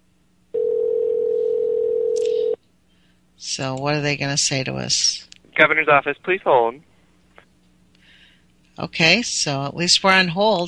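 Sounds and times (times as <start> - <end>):
steady telephone tone: 0.6 - 2.6
speech: 3.6 - 6.9, 8.8 - 10.6.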